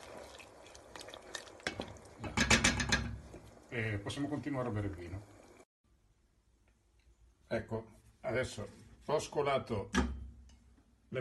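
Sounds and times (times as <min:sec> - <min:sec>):
stirring onion and pepper in a pan while they brown: 0:00.0 - 0:05.6
speech: 0:03.8 - 0:05.4, 0:07.6 - 0:10.1.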